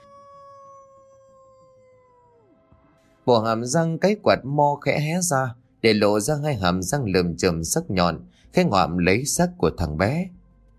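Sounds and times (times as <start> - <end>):
dog howling mournfully: 0.0 - 3.4
speech: 3.3 - 10.4.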